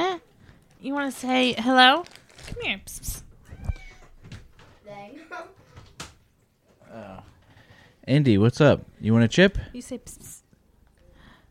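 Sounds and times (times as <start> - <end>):
speech: 0.8 - 3.2, 4.9 - 5.6, 6.9 - 7.3, 8.0 - 10.4
cat meowing: 3.5 - 4.2.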